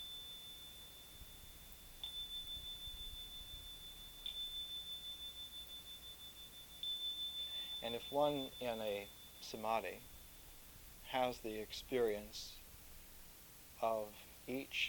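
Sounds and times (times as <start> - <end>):
small high-pitched bell struck: 0.0 - 12.6
speech: 7.8 - 10.1, 11.1 - 12.6, 13.8 - 14.8.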